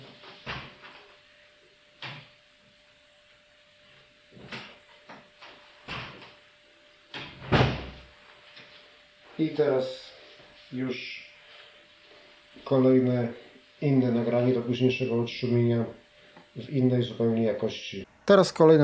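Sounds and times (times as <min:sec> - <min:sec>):
door opening and closing with clicks, thuds and creaks: 0:05.8 - 0:06.3, 0:07.1 - 0:08.1
speech: 0:09.4 - 0:10.0, 0:10.7 - 0:11.2, 0:12.7 - 0:16.0, 0:16.6 - 0:18.8.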